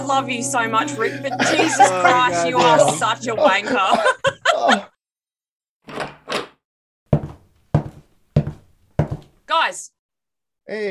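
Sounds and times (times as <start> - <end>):
speech: 0.1 - 4.8, 10.7 - 10.8
laughter: 0.9 - 5.0
door being kicked: 5.8 - 9.3.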